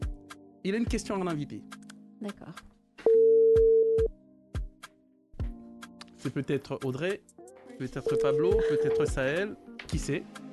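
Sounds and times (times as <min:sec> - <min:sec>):
speech: 0:00.6 - 0:02.7, 0:06.2 - 0:10.4
telephone line tone while calling a radio listener: 0:03.1 - 0:04.1, 0:08.2 - 0:09.1.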